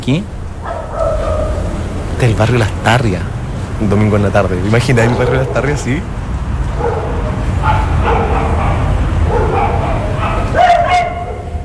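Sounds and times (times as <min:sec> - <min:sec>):
speech: 0:00.0 - 0:00.4, 0:02.2 - 0:06.2
dogs barking in a deserted neighborhood on a Sunday afternoon: 0:00.6 - 0:02.2, 0:04.8 - 0:11.6.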